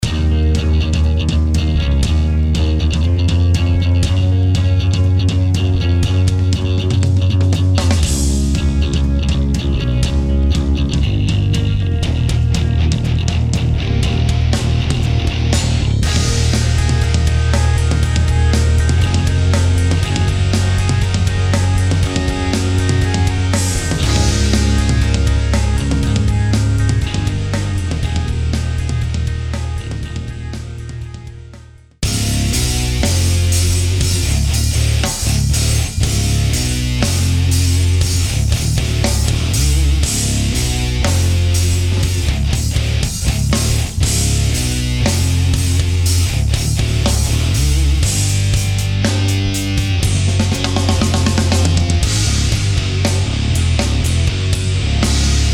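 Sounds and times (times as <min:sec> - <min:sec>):
mega metal music: 0:00.0 - 0:55.5.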